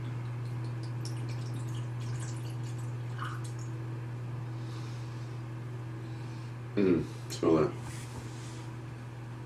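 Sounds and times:
steady low electrical hum: 0.0 - 9.4
whisky trickling and splashing into a glass: 0.1 - 3.7
speech: 6.8 - 7.8.

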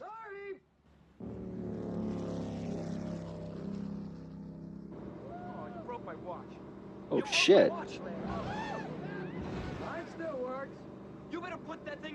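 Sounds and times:
motorboat engine roaring over a boat wake: 1.2 - 12.1
speech: 6.2 - 8.4, 11.5 - 12.1.

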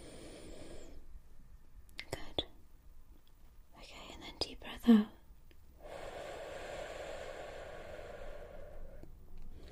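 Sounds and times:
slow deep breaths in and out during a role-played medical exam: 0.0 - 1.2, 5.8 - 9.7
faint whispering: 2.0 - 2.6, 3.7 - 5.2.

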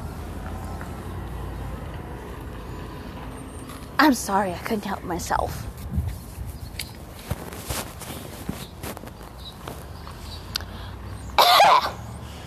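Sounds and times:
bus passing by: 0.0 - 5.8, 9.2 - 12.4
speech: 4.0 - 5.7.

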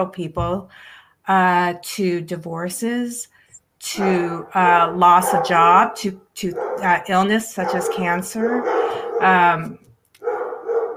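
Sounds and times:
speech: 0.0 - 10.3
dogs barking indoors: 3.9 - 9.5, 10.2 - 10.9.

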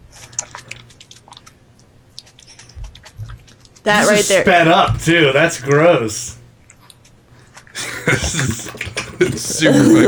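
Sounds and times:
mukbang eating with soft wet chewing and smacking: 0.0 - 3.8, 6.6 - 10.0
speech: 3.8 - 6.4, 8.2 - 10.0
laughter: 3.9 - 6.4, 7.8 - 10.0.

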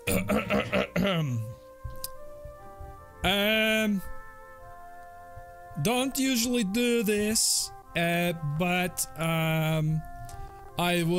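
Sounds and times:
man clearing his throat: 0.0 - 1.5
speech: 1.0 - 1.6, 3.2 - 4.2, 5.8 - 10.1, 10.8 - 11.1.

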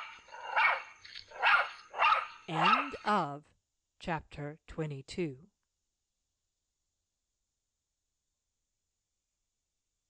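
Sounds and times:
dog barking outside a house: 0.0 - 3.0
speech: 2.5 - 5.5.

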